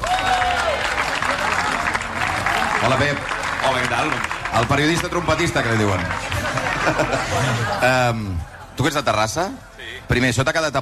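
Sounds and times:
audience applause for a music group: 0.0s - 8.0s
speech: 2.8s - 10.8s
laughter: 5.8s - 8.9s.

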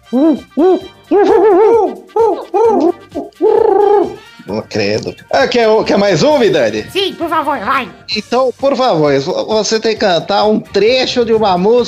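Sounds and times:
person imitating owl hoots: 0.0s - 4.3s
speech: 0.1s - 11.8s.

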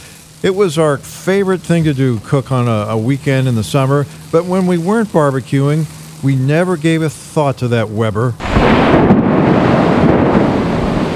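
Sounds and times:
heavy rain: 0.0s - 11.1s
speech: 0.4s - 9.2s
deep thunder rumbling: 8.4s - 11.1s.

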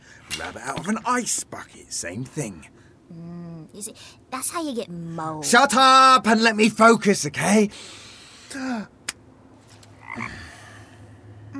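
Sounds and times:
faint steady hum: 0.0s - 11.5s
speech: 0.4s - 9.0s, 10.2s - 10.4s
frog croaking: 10.0s - 10.7s.

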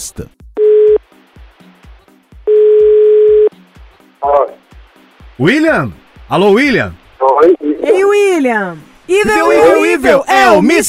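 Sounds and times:
speech: 0.0s - 0.4s, 5.4s - 10.8s
telephone ringback tone as a call is placed: 2.5s - 3.5s.

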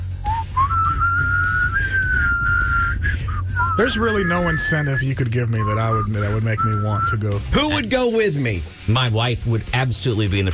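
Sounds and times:
low rumble: 0.0s - 4.7s
person whistling: 0.2s - 7.4s
speech: 3.8s - 10.5s.

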